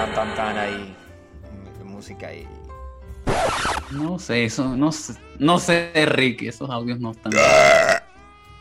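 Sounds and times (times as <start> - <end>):
speech: 0.2 - 1.0, 2.0 - 2.6, 3.3 - 7.9
loud raspy burp sound effect: 7.3 - 8.2.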